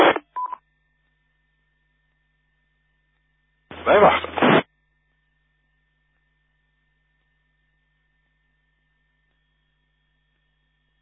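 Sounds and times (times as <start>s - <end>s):
brief burst of noise: 3.7s - 4.6s
speech: 3.9s - 4.3s.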